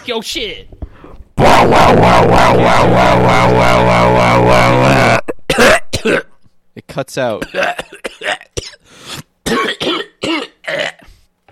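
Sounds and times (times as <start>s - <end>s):
speech: 0.0s - 0.8s, 1.5s - 6.2s, 6.8s - 8.4s
person coughing harshly: 4.8s - 6.4s, 7.4s - 11.1s.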